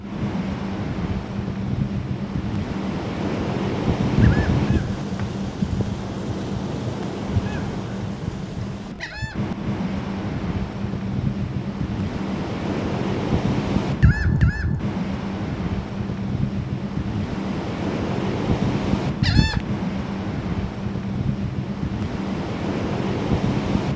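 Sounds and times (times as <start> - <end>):
waves: 0.0 - 23.9
gulls calling: 2.2 - 10.0, 13.8 - 15.0, 19.0 - 19.8.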